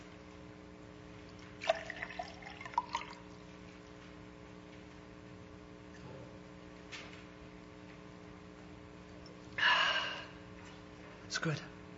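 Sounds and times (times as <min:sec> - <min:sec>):
water pouring: 0:01.4 - 0:03.4
breathy gasp: 0:09.6 - 0:10.4
speech: 0:11.4 - 0:11.7.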